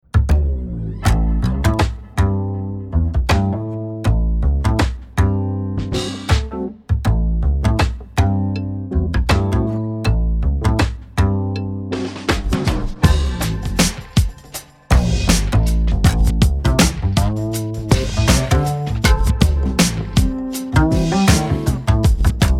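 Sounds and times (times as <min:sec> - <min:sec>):
upright bass: 0:00.0 - 0:22.5.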